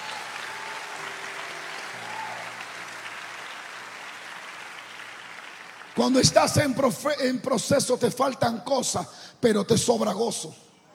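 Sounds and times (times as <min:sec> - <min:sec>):
audience applauding loudly: 0:00.0 - 0:06.8
speech: 0:06.0 - 0:10.7.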